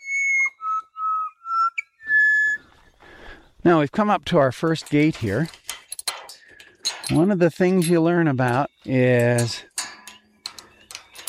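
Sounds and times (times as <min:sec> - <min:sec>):
pied butcherbird dawn song of flute-like whistles in eastern Australia: 0:00.0 - 0:02.6
speech: 0:03.6 - 0:05.6, 0:07.1 - 0:09.7.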